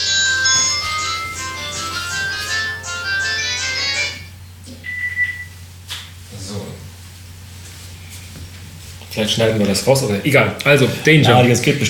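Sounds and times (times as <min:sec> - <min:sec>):
phone ringing with bright melodic electronic ringtone: 0:00.0 - 0:04.3
low hum: 0:00.0 - 0:11.8
speech: 0:09.2 - 0:11.8.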